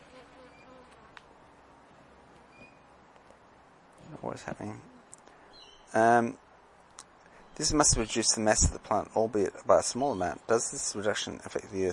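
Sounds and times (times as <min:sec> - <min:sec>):
bee buzzing: 0:00.0 - 0:01.3
faint noise: 0:00.0 - 0:11.9
speech: 0:04.2 - 0:04.9, 0:05.9 - 0:06.4, 0:07.6 - 0:11.9.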